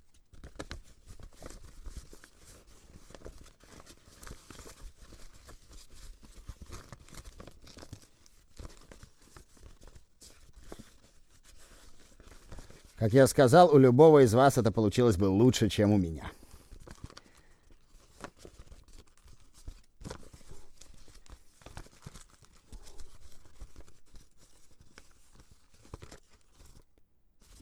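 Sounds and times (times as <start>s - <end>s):
single sheet of paper crinkling and creasing as it is folded into a boat or hat: 0.3s - 26.8s, 27.4s - 27.6s
speech: 13.0s - 16.4s.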